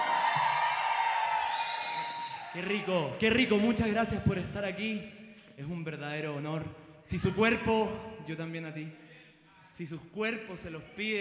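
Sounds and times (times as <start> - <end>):
large audience shouting and cheering: 0.0 - 4.0
speech: 2.6 - 9.0, 9.7 - 11.1.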